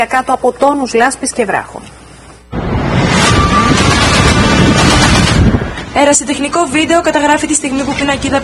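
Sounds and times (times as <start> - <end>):
speech: 0.0 - 2.0, 6.0 - 8.4
gale-force storm wind buffeting the microphone: 2.5 - 7.0.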